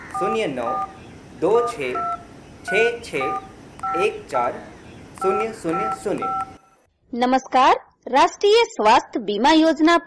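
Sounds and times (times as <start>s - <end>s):
telephone keypad beeps: 0.1s - 1.0s, 1.6s - 4.2s, 5.2s - 6.8s
speech: 0.2s - 6.5s, 7.1s - 10.0s.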